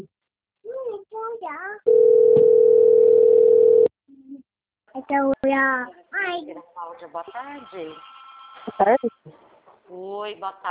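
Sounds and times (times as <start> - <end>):
telephone line tone of an outgoing phone call: 1.9 - 3.9
speech: 5.1 - 8.1, 8.7 - 10.6.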